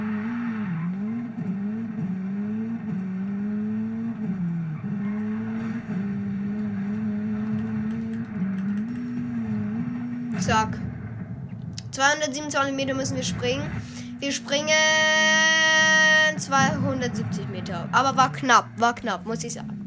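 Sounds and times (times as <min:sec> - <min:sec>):
Hunigan RS200 engine launched at full throttle in a racing video game: 0:00.0 - 0:19.8
speech: 0:10.4 - 0:10.9, 0:12.0 - 0:15.6, 0:16.4 - 0:19.7.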